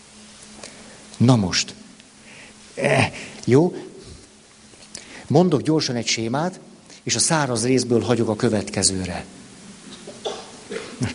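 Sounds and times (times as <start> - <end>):
speech: 1.2 - 1.8, 2.8 - 3.9, 5.3 - 9.4
person sneezing: 10.1 - 11.1.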